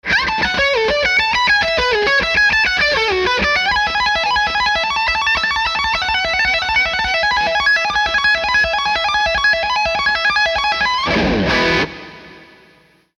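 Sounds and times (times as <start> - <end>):
Barber Electronics Small Fry S470 guitar effect pedal: 0.0 - 13.1.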